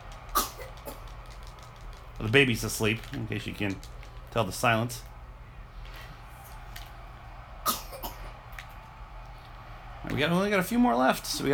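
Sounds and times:
faint low hum: 0.0 - 11.5
speech: 2.2 - 5.1, 10.2 - 11.5
person sneezing: 7.7 - 8.3.

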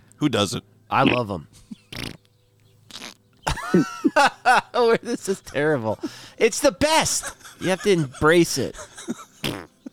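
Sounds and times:
speech: 0.2 - 1.6, 3.7 - 9.6
sputtering fart sounds: 1.0 - 2.3, 2.9 - 3.2, 9.4 - 9.8
laughter: 3.5 - 9.9.

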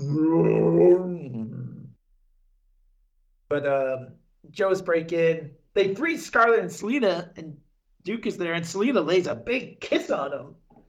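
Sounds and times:
monster roar of a giant snake robot: 0.0 - 2.0
speech: 3.5 - 10.6.

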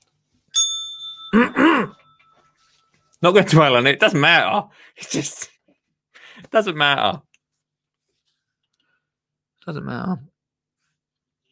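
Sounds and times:
bright bell ding with sustained shimmer: 0.5 - 3.1
speech: 3.2 - 5.5, 6.4 - 7.3, 9.6 - 10.3.

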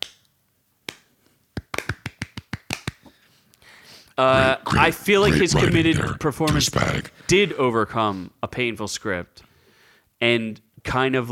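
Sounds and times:
soft golf clap: 0.9 - 3.1
speech: 4.2 - 9.5, 10.2 - 11.2.

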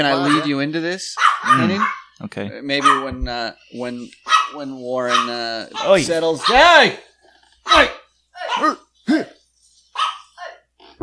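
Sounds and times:
dog barking: 0.0 - 0.6, 1.2 - 2.2, 2.8 - 3.2, 4.2 - 6.8, 7.7 - 9.3, 9.9 - 10.6
speech: 0.0 - 9.3.

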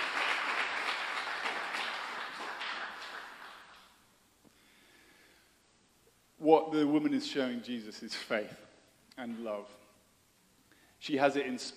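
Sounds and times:
crowd applauding: 0.0 - 4.0
speech: 6.5 - 9.8, 11.0 - 11.7.

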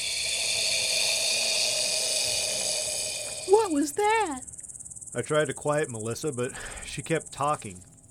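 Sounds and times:
loud harsh airy creature hiss: 0.0 - 3.8
speech: 3.7 - 4.5, 5.2 - 7.9.

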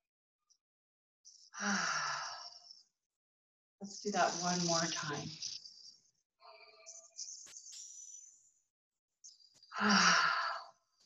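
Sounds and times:
speech: 1.6 - 2.0, 3.8 - 5.6, 9.8 - 10.3
group taking a big deep breath in together: 9.7 - 10.8.

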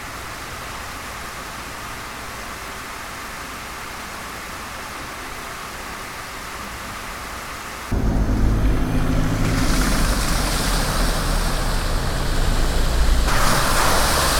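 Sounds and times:
car engine rumbling at a river ford: 7.9 - 14.3
tyres churning through shallow water of a river ford: 8.0 - 14.3.

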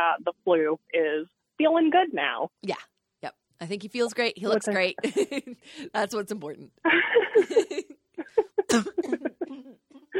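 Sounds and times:
speech: 0.0 - 7.9, 8.7 - 10.1
single sudden sharp cough: 8.2 - 10.1.

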